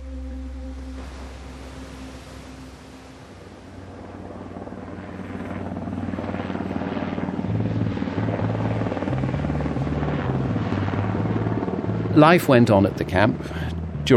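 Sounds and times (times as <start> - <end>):
helicopter engine hum: 0.0 - 14.1
helicopter rotor chop: 3.5 - 14.1
speech: 12.2 - 14.1.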